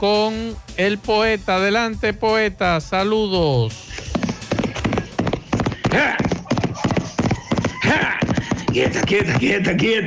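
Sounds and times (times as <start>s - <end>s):
speech: 0.0s - 3.9s, 6.0s - 6.3s, 8.8s - 10.0s
donkey hooves clopping: 3.9s - 10.0s.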